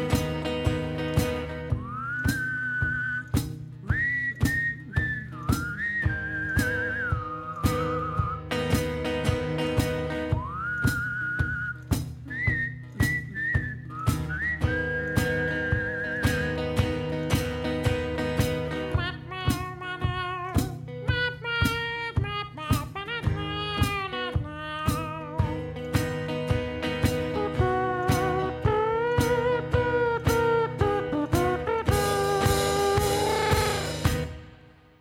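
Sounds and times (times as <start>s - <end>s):
steady rhythmic musical backing: 0.0s - 34.9s
eerie wavering whistle: 1.7s - 8.5s, 10.3s - 16.8s.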